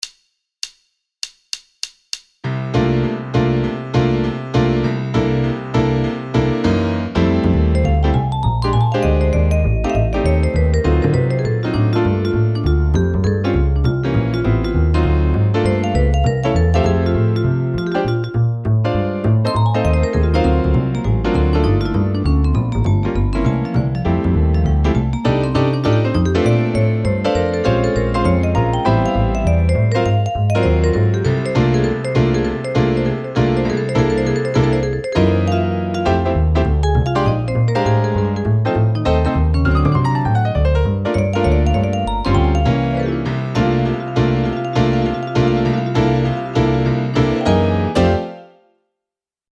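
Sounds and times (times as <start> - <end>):
swing jazz music: 2.6 - 48.4.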